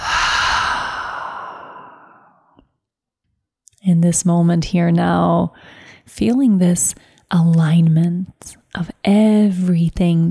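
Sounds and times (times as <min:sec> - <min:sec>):
long airy exhale through the mouth during a deep breathing exercise: 0:00.0 - 0:02.5
speech: 0:03.9 - 0:10.2.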